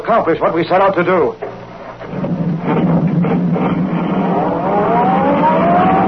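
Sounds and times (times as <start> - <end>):
speech: 0.1 - 1.5, 2.6 - 5.1
sedan accelerating along a concrete road: 2.0 - 6.0.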